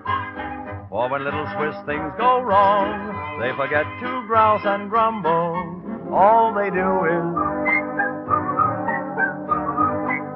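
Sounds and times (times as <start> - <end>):
musical accompaniment: 0.0 - 10.3
speech: 1.0 - 7.4
melodic whistling carrying the tune of a Swiss-themed song: 7.0 - 10.3.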